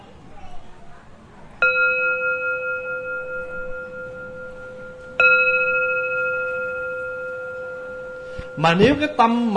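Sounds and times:
Buddhist temple bell being struck: 1.6 - 9.5
speech: 8.6 - 9.5.

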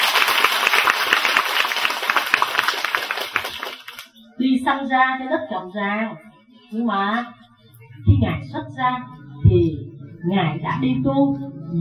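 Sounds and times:
audience applauding: 0.0 - 4.2
speech: 4.7 - 7.4, 8.0 - 11.7.

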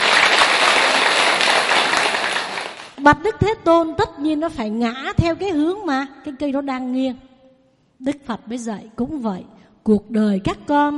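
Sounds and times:
audience applause at a talk: 0.0 - 3.0
speech: 3.0 - 7.3, 8.0 - 10.9.

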